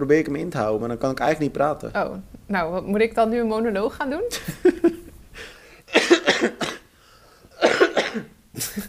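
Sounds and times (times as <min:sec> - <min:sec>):
speech: 0:00.0 - 0:05.5, 0:08.2 - 0:08.8
person coughing: 0:05.9 - 0:06.9, 0:07.6 - 0:08.8.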